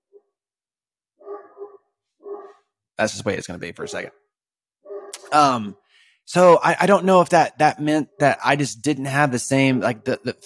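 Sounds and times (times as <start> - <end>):
dog barking: 1.2 - 2.6, 4.9 - 5.3
speech: 3.0 - 4.2, 5.3 - 10.4.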